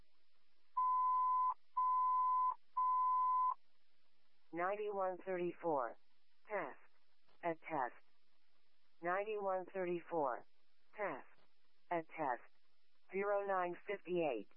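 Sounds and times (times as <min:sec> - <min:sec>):
electronic alarm tones: 0:00.8 - 0:03.6
speech: 0:04.6 - 0:06.7, 0:07.5 - 0:08.1, 0:09.0 - 0:11.3, 0:11.9 - 0:14.5.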